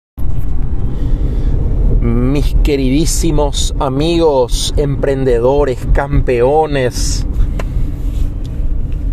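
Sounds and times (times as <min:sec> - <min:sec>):
low engine rumble from inside a moving car: 0:00.2 - 0:09.1
road noise from inside a moving car: 0:00.2 - 0:09.1
speech: 0:02.6 - 0:07.4.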